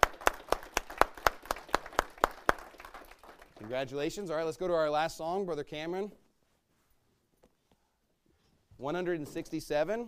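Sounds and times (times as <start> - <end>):
applause from a gathered crowd: 0.0 - 3.9
speech: 3.6 - 6.2, 8.8 - 10.0.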